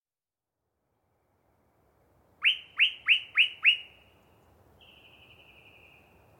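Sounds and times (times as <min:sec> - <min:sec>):
Yellow-breasted chat singing upslurred whistled notes in deciduous cover: 0:02.4 - 0:04.1, 0:04.8 - 0:06.2.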